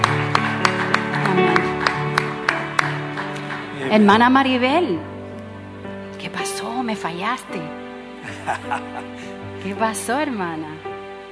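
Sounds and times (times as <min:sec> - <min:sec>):
church audience clapping in rhythm: 0:00.0 - 0:04.4
sustained music with held organ-like tones: 0:00.0 - 0:11.2
speech: 0:03.9 - 0:05.1, 0:06.2 - 0:07.8, 0:08.4 - 0:10.9
laughter: 0:08.2 - 0:09.5.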